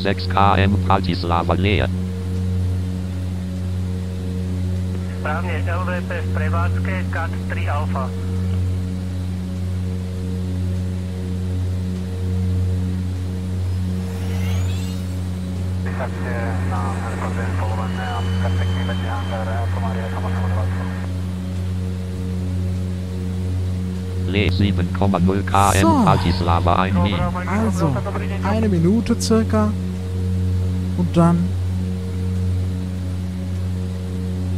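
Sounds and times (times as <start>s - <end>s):
speech: 0.0s - 2.0s, 5.2s - 8.4s, 16.0s - 20.4s, 24.2s - 29.8s, 31.0s - 31.6s
airplane engine droning during landing approach to Bratislava: 0.0s - 34.5s
faint rushing sweep: 13.6s - 21.1s.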